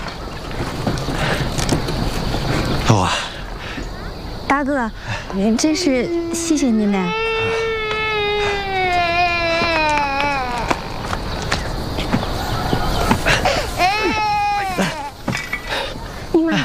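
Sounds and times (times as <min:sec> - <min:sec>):
scuffling noise: 0:00.0 - 0:16.6
speech: 0:02.9 - 0:03.3, 0:04.5 - 0:07.5
child crying: 0:05.7 - 0:11.3, 0:13.4 - 0:15.2.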